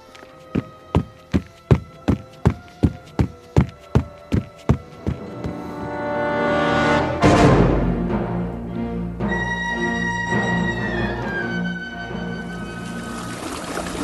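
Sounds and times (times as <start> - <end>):
man's running footsteps out of a cabin toward a river: 0.0 - 5.8
music: 0.0 - 13.9
sudden burst: 5.8 - 8.4.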